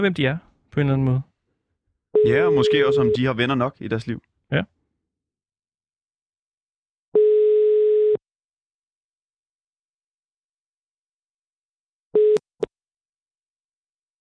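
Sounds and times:
speech: 0.0 - 1.3, 2.2 - 4.8
steady telephone line tone while phoning: 2.2 - 3.3, 7.2 - 8.2, 12.2 - 12.4.

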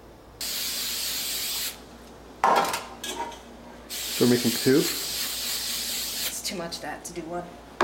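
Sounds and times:
cooking spray hissing onto a baking pan in Old Orchard Beach Maine: 0.4 - 1.8, 3.9 - 6.4
speech: 4.2 - 5.0, 6.5 - 7.7.

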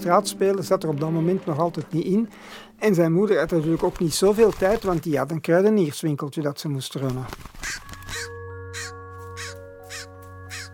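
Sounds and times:
speech: 0.0 - 8.3
raven cawing: 7.6 - 10.7.

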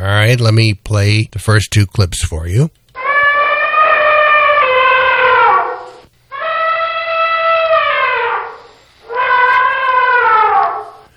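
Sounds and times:
speech: 0.0 - 2.8
elephant trumpeting: 3.0 - 11.1.

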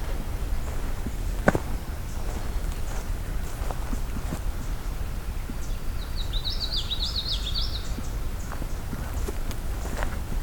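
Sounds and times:
steady footsteps: 0.0 - 5.7, 7.8 - 10.4
common yellowthroat warbler singing in a wet area: 0.0 - 10.4
outdoor rustling: 0.0 - 10.4.

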